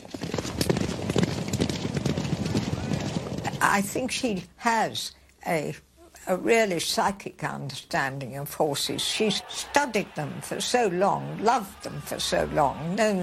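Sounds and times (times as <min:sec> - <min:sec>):
horse hooves clip-clopping on a hard surface: 0:00.0 - 0:03.7
speech: 0:03.6 - 0:13.2.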